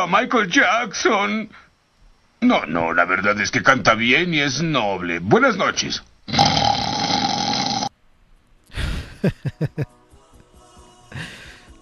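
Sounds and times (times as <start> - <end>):
speech: 0.0 - 1.6, 2.4 - 6.6, 9.2 - 10.0
cartoon character snoring: 6.3 - 7.9
laughter: 9.0 - 9.9.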